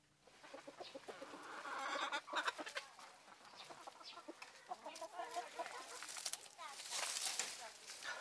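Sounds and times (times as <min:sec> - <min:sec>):
chickens clucking in a henhouse: 0:00.0 - 0:08.1
rustling of leaves thrown into a henhouse: 0:05.3 - 0:08.1.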